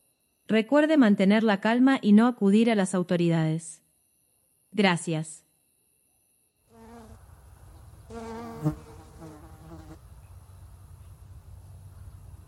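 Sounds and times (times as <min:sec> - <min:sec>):
speech: 0:00.5 - 0:03.8, 0:04.7 - 0:05.4, 0:08.1 - 0:08.8
fly buzzing: 0:06.6 - 0:10.1.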